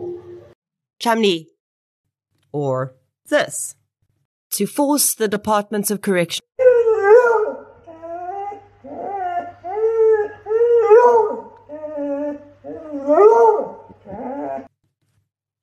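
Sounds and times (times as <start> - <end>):
speech: 1.0 - 1.5, 2.5 - 3.8, 4.6 - 6.5
dog howling and whimpering: 6.6 - 14.7.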